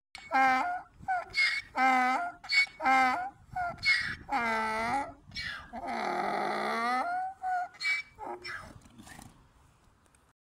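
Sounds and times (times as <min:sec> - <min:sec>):
donkey braying: 0:00.2 - 0:09.2.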